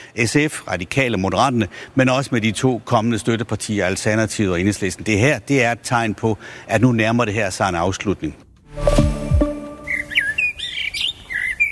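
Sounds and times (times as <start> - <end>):
speech: 0.2 - 8.5
brief low harmonic tone: 8.7 - 10.2
birds chirping and singing: 9.8 - 11.7.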